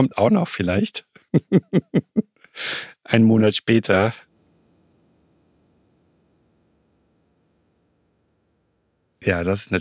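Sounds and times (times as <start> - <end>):
speech: 0.0 - 4.3, 9.2 - 9.7
laughter: 1.2 - 2.2
redwing thin high-pitched tseep flight call in the night sky: 4.3 - 9.6.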